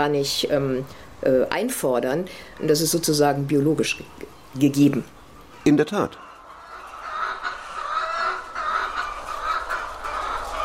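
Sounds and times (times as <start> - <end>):
speech: 0.0 - 6.2
flock of chickens clucking and calling: 2.6 - 10.6.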